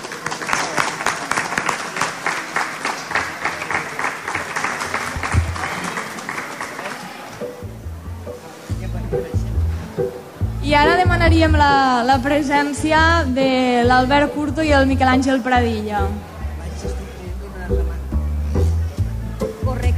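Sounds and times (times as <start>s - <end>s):
audience applause: 0.0s - 7.6s
low booming voices or music: 3.9s - 19.9s
speech: 10.8s - 16.3s.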